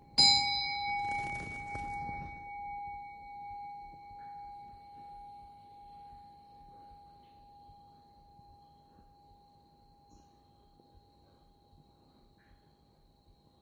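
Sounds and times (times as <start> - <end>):
meditation bell struck and ringing: 0.0 - 9.6.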